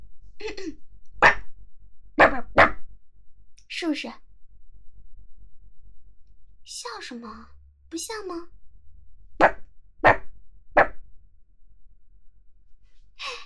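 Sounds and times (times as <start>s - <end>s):
person imitating a small aggressive dog barking: 2.2s - 2.7s
speech: 3.8s - 4.2s, 6.9s - 8.6s.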